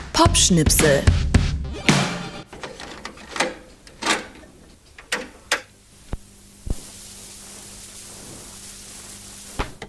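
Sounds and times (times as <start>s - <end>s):
speech: 0.2s - 1.2s
cassette player mechanism clunking and clicking: 2.5s - 5.7s
steady tape hiss: 4.6s - 9.6s.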